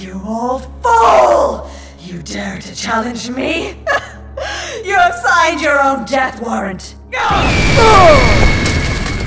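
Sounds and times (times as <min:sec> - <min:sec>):
speech: 0:00.0 - 0:04.1, 0:04.8 - 0:08.4
telekinetic blast with booming rumble and swirling energy tones: 0:07.3 - 0:09.2.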